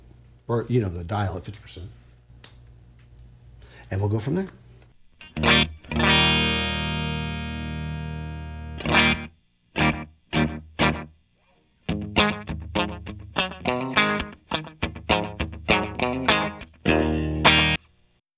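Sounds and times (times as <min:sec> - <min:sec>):
speech: 0:00.5 - 0:02.0, 0:03.9 - 0:04.6
electric guitar played through a single-head tape echo set for slapback: 0:05.2 - 0:11.1, 0:11.9 - 0:17.8.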